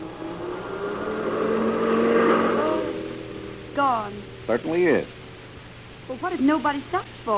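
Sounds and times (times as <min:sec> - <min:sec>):
car driving past on a road: 0:00.0 - 0:05.5
speech: 0:04.5 - 0:05.2, 0:06.1 - 0:07.3.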